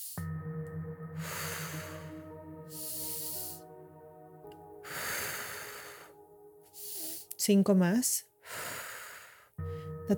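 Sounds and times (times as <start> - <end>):
steady musical drone: 0.2 - 7.4, 9.6 - 10.1
deep circular breathing in and out in a guided exercise: 0.3 - 7.3, 8.4 - 10.1
speech: 7.4 - 8.3.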